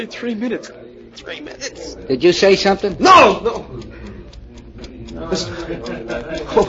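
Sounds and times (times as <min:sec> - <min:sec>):
speech: 0:00.0 - 0:03.9, 0:05.2 - 0:06.6
clock ticking: 0:00.0 - 0:06.6
laughter: 0:03.5 - 0:06.6.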